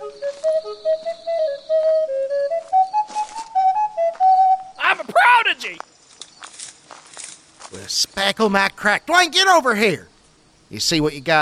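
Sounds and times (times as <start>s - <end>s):
slide whistle playing short sliding notes: 0.0s - 4.8s
speech: 8.1s - 10.1s, 10.7s - 11.3s.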